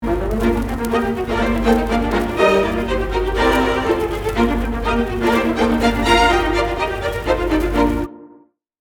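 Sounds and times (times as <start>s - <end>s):
violas playing excited 16th note counterpoint: 0.0s - 8.4s
harmonized overture melody: 0.0s - 8.5s.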